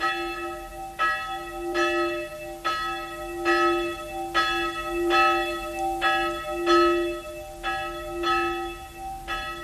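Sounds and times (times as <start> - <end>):
church bell tolling for a funeral at a small cemetery in Sopron: 0.0 - 9.6.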